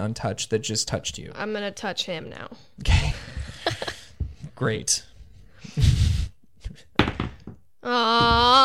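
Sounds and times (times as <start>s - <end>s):
speech: 0.0s - 3.2s, 4.6s - 5.1s, 5.7s - 5.9s, 7.8s - 8.6s
dice landing on a table: 7.0s - 7.6s.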